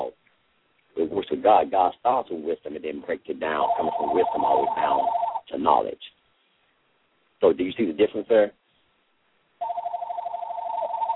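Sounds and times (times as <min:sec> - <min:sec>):
speech: 0:01.1 - 0:06.2, 0:07.4 - 0:08.6
telephone ringing with warbling trill: 0:03.5 - 0:05.4, 0:09.6 - 0:11.1.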